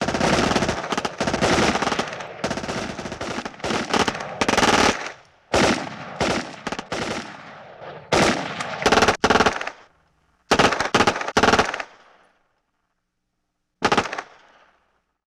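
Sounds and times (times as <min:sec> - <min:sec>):
machine gun firing multiple long bursts: 0:00.0 - 0:09.8, 0:10.5 - 0:12.0, 0:13.8 - 0:14.4.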